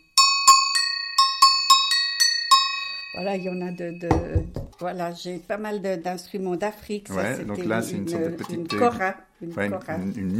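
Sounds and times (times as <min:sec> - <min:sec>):
small bells ringing: 0:00.0 - 0:04.5
speech: 0:03.1 - 0:10.3.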